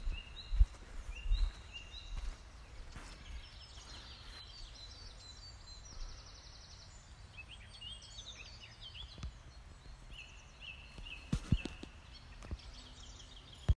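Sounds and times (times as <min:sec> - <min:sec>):
soft thudding footsteps: 0:00.0 - 0:04.8
dawn chorus of birds singing and chirping in a nature reserve: 0:00.0 - 0:13.7.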